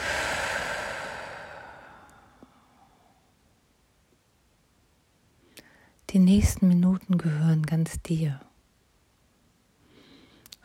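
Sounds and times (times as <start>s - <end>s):
person exhaling slowly during a guided breathing exercise: 0.0s - 3.3s
speech: 6.1s - 8.5s.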